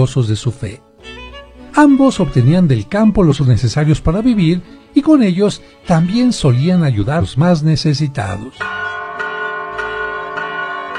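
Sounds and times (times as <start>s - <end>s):
speech: 0.0s - 0.9s, 1.8s - 8.8s
church bells ringing at noon: 8.2s - 10.9s.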